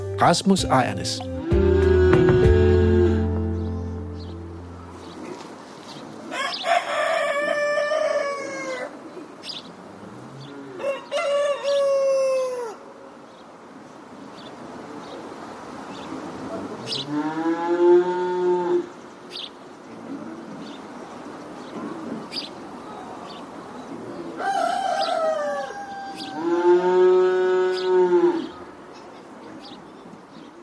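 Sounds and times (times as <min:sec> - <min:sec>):
speech: 0:00.2 - 0:01.4
cows mooing on a farm: 0:01.4 - 0:03.5, 0:16.8 - 0:18.9, 0:26.1 - 0:28.6
rooster crowing in a farmyard: 0:06.3 - 0:09.0, 0:10.7 - 0:12.9, 0:24.4 - 0:28.5.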